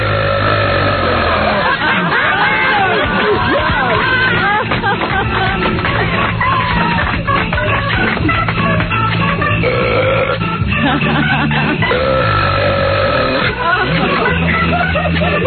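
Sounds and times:
man belching: 0.0 - 1.8, 9.6 - 10.6, 11.8 - 13.6
laughter: 1.0 - 9.0, 10.5 - 15.4
crowd babble: 1.5 - 9.0, 13.4 - 15.4.

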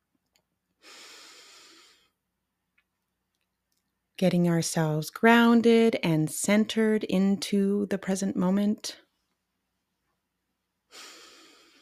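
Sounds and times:
faint soft clicks: 0.1 - 0.6, 2.7 - 4.0
slow deep breath: 0.8 - 2.2, 10.9 - 11.7
speech: 4.2 - 9.0.

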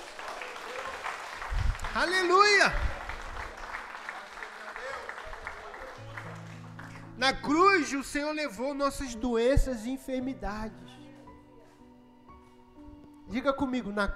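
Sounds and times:
audience at a church service applauding: 0.0 - 7.2
speech: 2.0 - 2.9, 7.2 - 11.0, 13.3 - 14.1.

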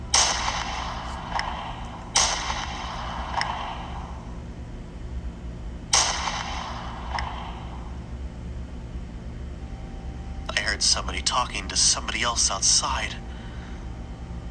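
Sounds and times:
steady low rumble: 0.0 - 14.4
sharp gunshots: 0.1 - 4.2, 5.9 - 8.0
fainter echo-like snap: 0.1 - 4.3, 5.9 - 8.0
speech: 10.8 - 13.2.

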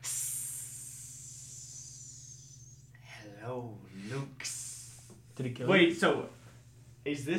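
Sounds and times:
voice imitating a hissing snake: 0.0 - 3.2, 3.9 - 5.3
faint low hum: 0.0 - 7.3
speech: 5.4 - 6.4, 7.0 - 7.3.

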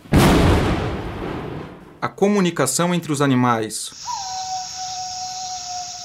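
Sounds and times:
single sharp thunderclap rolling into a deep rumble: 0.0 - 2.0
speech: 2.1 - 4.2.

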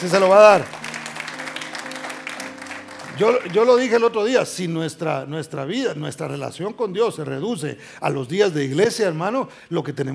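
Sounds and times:
speech: 0.0 - 0.8, 3.2 - 10.1
church audience clapping: 0.0 - 4.6.

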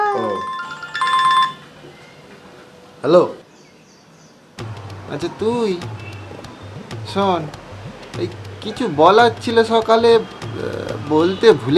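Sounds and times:
mobile phone ringtone with melodic electronic tune: 0.2 - 1.7
speech: 3.0 - 3.4, 5.1 - 6.0, 7.1 - 7.6, 8.2 - 11.7.

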